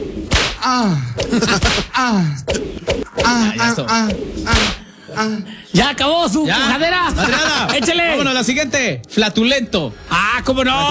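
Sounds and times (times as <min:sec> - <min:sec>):
sharp whip cracks: 0:00.2 - 0:00.7, 0:01.6 - 0:01.9, 0:04.1 - 0:04.8
falling sliding vocal sounds: 0:00.6 - 0:05.6
speech: 0:00.6 - 0:10.8
laughter: 0:01.2 - 0:02.2, 0:06.8 - 0:08.4.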